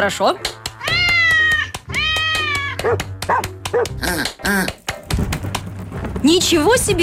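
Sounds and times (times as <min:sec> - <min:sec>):
speech: 0:00.0 - 0:00.6, 0:02.8 - 0:04.8, 0:06.2 - 0:07.0
cat meowing in long rising cries: 0:00.6 - 0:03.0.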